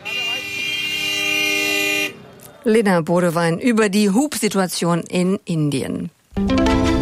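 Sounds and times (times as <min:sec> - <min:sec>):
vehicle horns honking in busy traffic in India: 0:00.0 - 0:02.3
speech: 0:02.6 - 0:06.9.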